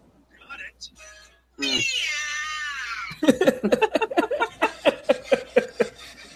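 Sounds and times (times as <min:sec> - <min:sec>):
cartoonish voice saying meow: 0:01.6 - 0:03.1
laughter: 0:02.4 - 0:06.3.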